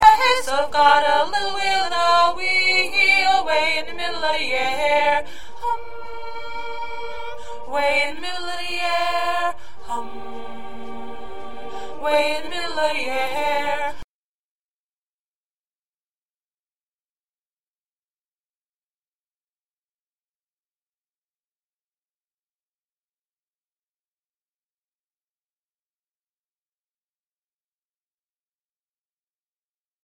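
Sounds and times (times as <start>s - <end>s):
second alto part: 0.0s - 14.0s.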